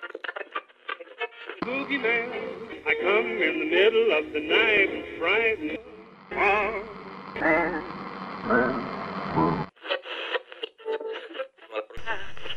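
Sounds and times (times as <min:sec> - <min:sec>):
speech: 0:01.6 - 0:05.8
hissing band-limited radio static: 0:01.6 - 0:10.8, 0:12.0 - 0:12.5
warbling wavering voice over radio: 0:06.3 - 0:09.7.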